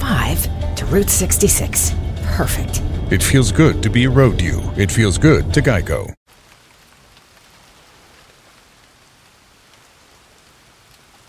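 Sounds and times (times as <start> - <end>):
speech: 0.9 - 6.2
rain easing off: 4.9 - 11.2.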